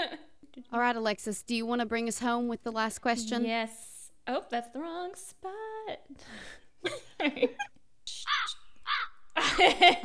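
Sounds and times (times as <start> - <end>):
speech: 0.1 - 7.7, 9.6 - 10.0
crow cawing sound effect: 8.3 - 9.3.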